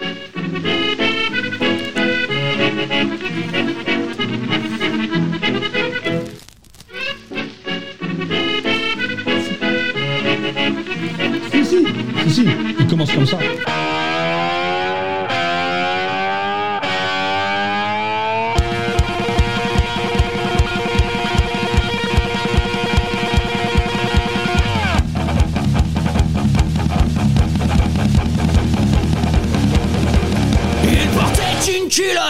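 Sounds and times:
rock band playing a cover: 0.0 - 6.3, 7.3 - 31.8
sustained bending distorted guitar notes: 0.0 - 31.8
pounding drums with steady driving beat: 18.6 - 31.7.

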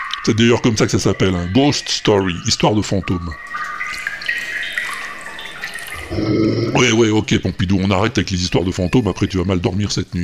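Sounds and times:
speech: 0.2 - 3.6, 6.3 - 10.2
water trickling and dripping in an empty abbey room: 2.1 - 7.0.

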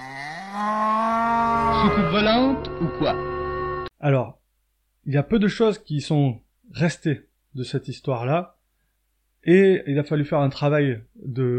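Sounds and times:
cow mooing: 0.0 - 3.8
speech: 1.8 - 3.3, 4.0 - 4.4, 5.0 - 8.6, 9.4 - 11.5.

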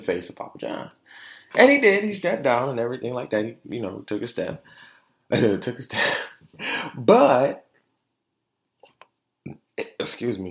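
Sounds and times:
speech: 0.0 - 7.6, 10.0 - 10.4
person burping after eating nuggets: 9.5 - 10.0.

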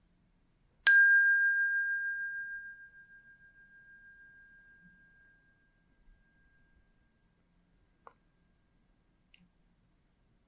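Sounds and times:
meditation bell ringing to end practice: 0.9 - 6.8.

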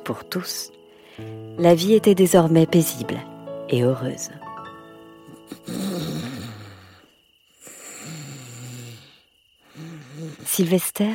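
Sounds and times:
speech: 0.0 - 4.4, 10.6 - 11.1
man snoring loudly: 5.5 - 10.5.

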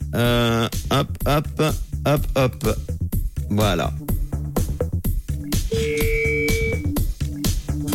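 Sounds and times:
rhythmic music with punchy beats: 0.0 - 7.9
speech: 0.2 - 4.1
telephone ringback tone during outgoing call: 5.7 - 6.9.

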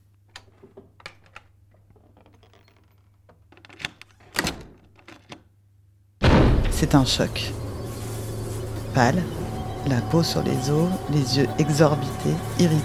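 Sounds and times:
door handling clicks and rattles: 0.2 - 5.5
door shutting thud: 6.2 - 7.3
speech: 6.8 - 7.6, 9.0 - 12.8.

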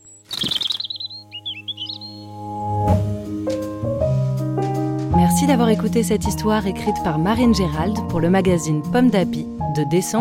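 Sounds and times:
robin chirping: 0.0 - 2.7
gentle sustained music: 0.0 - 10.1
speech: 5.4 - 10.1.

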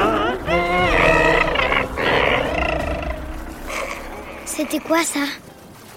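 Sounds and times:
dolphin cry: 0.0 - 4.6
creature growl: 0.0 - 5.0
speech: 4.6 - 5.5.

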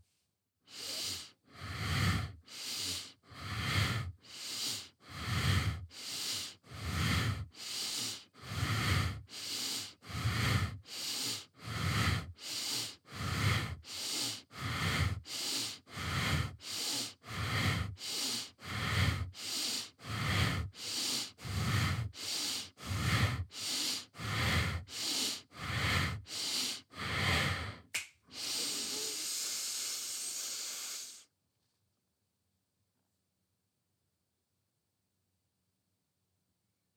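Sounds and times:
rapid forceful bellows breathing through the nose in yoga practice: 0.7 - 31.3.

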